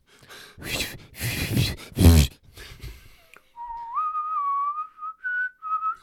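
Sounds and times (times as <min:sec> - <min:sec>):
breathy noisy rustling: 0:00.0 - 0:03.3
person whistling a short eerie melody: 0:03.6 - 0:06.0.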